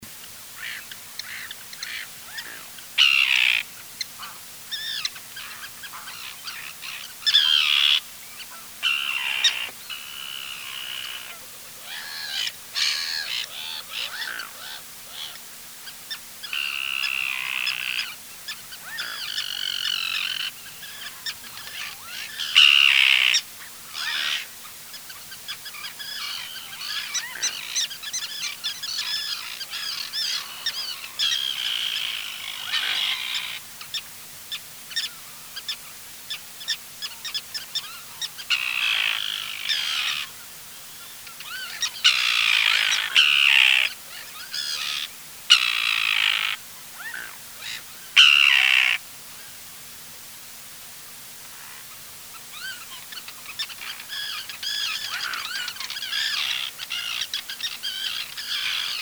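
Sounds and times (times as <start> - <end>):
common tern Sterna hirundo hirundo calling: 0.2 - 49.0, 51.5 - 59.0.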